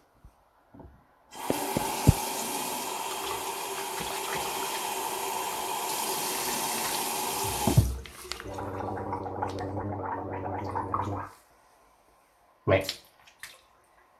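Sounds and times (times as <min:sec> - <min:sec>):
hands being washed: 0:01.3 - 0:09.8
tap water running into a ceramic washbasin set into a board: 0:01.3 - 0:11.3
speech: 0:12.7 - 0:13.0.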